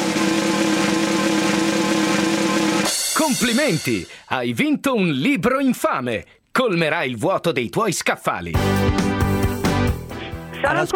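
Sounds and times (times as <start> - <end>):
chainsaw engine sound effect droning: 0.0 - 2.9
speech: 3.3 - 9.1, 10.6 - 10.9.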